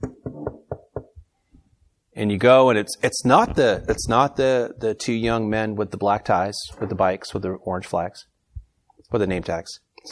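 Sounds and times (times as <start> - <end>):
firm knocking on a wooden door: 0.0 - 1.2
speech: 2.2 - 8.3, 9.1 - 10.1.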